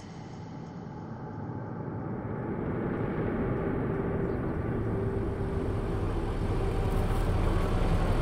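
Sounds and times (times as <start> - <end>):
low humming tone: 0.0 - 8.2
heavy truck deep engine rumble: 5.0 - 8.2.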